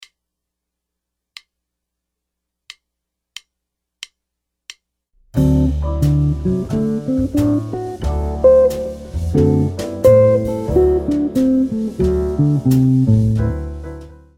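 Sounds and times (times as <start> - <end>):
guitar arpeggios: 5.6 - 13.3.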